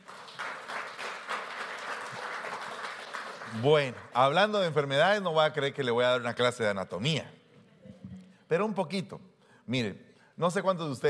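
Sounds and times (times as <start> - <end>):
crowd applauding after a prayer: 0.0 - 4.1
speech: 3.5 - 7.4, 8.5 - 11.0.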